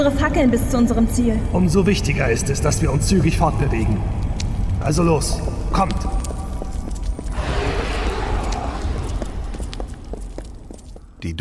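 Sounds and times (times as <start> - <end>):
speech: 0.0 - 4.2, 4.8 - 6.2
footsteps of several people walking briskly together: 3.6 - 11.2.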